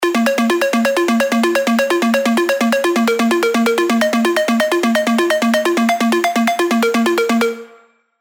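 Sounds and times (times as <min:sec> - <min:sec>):
progressive synth arpeggios in A sharp minor: 0:00.0 - 0:07.8.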